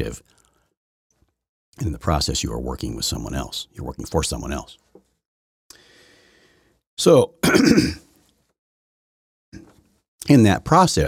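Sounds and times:
speech: 0.0s - 0.3s, 1.8s - 5.0s, 7.0s - 8.0s, 10.3s - 11.0s
throat clearing: 7.4s - 8.1s.

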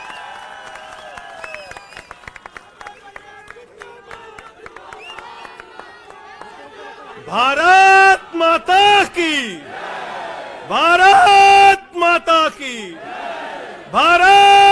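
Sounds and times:
large crowd cheering, shouting and whooping: 0.0s - 2.3s
large crowd applauding: 0.0s - 7.6s
speech: 7.3s - 9.7s, 10.7s - 13.1s, 13.9s - 14.6s.

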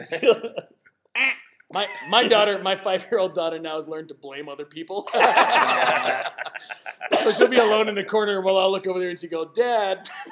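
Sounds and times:
laughter: 0.0s - 0.8s, 1.8s - 2.6s, 5.1s - 7.9s, 10.0s - 10.3s
speech: 0.1s - 0.7s, 1.7s - 10.3s
person imitating duck quacks: 1.2s - 2.3s.

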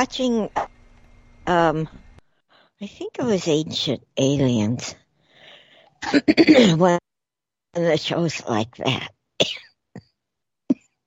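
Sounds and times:
speech: 0.0s - 0.6s, 1.5s - 2.0s, 2.8s - 5.0s, 6.0s - 7.1s, 7.7s - 9.6s
person coughing harshly: 6.0s - 6.8s.

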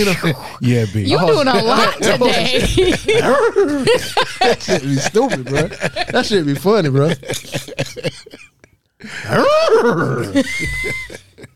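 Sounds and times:
speech: 0.0s - 8.2s, 9.3s - 11.2s
laughter: 1.0s - 11.5s
person imitating horse whinny: 9.2s - 10.4s.

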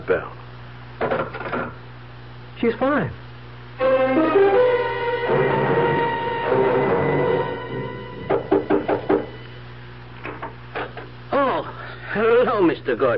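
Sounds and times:
low steady hum: 0.0s - 13.1s
speech: 0.1s - 0.4s, 2.6s - 3.2s, 12.2s - 13.1s
music: 3.8s - 9.6s
firm knocks on a door: 8.3s - 9.4s.

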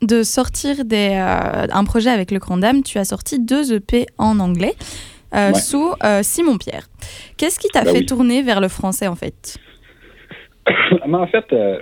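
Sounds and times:
speech: 0.0s - 9.8s, 10.6s - 11.7s
person sneezing: 7.8s - 8.1s, 10.3s - 11.1s.

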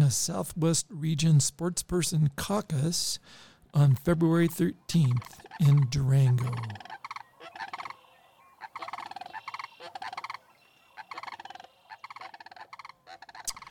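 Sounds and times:
speech: 0.1s - 6.9s
turkey gobbling: 4.9s - 13.6s.

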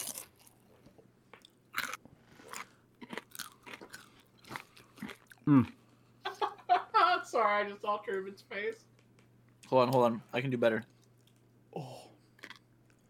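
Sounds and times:
crunchy chewing of food: 0.0s - 5.8s, 12.4s - 13.0s
speech: 5.5s - 5.8s, 7.4s - 8.9s, 9.7s - 10.9s.

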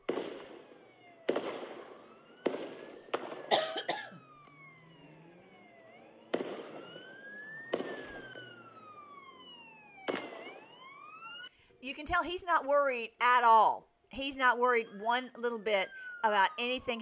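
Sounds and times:
loud sharp gunshots from a gunman on a bridge in Australia: 0.0s - 3.9s, 6.2s - 8.4s, 10.0s - 10.8s
wailing siren-like tones: 0.0s - 16.9s
speech: 11.8s - 16.9s.

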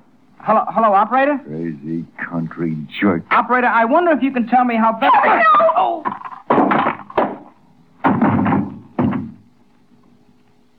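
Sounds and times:
speech: 0.4s - 6.4s
paperweight striking a man's head: 6.1s - 9.5s.

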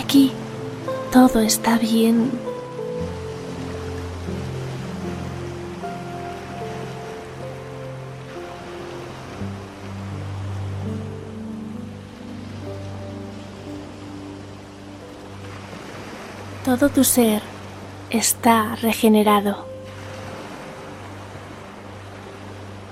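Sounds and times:
sea waves washing and hissing: 0.0s - 22.9s
soft sustained ambient music tones: 0.0s - 22.9s
speech: 0.1s - 0.4s, 1.1s - 2.5s, 16.7s - 17.5s, 18.1s - 19.7s.

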